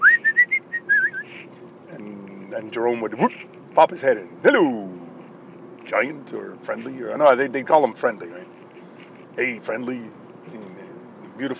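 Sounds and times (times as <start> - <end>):
person whistling an answering call: 0.0 - 1.3
speech: 2.5 - 5.0, 5.9 - 8.6, 9.4 - 10.6, 11.4 - 11.5.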